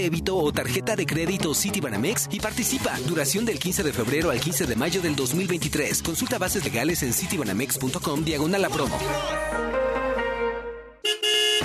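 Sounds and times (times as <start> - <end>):
speech: 0.0 - 9.8
car horns honking in traffic: 11.0 - 11.6.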